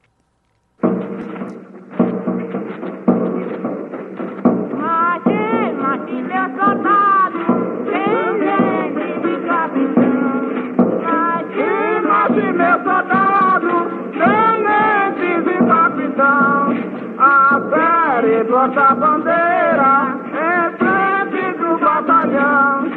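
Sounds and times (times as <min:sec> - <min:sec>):
rolling hand-drum beats: 0:00.8 - 0:22.9
voices singing a lively melodic chant together: 0:04.7 - 0:22.9.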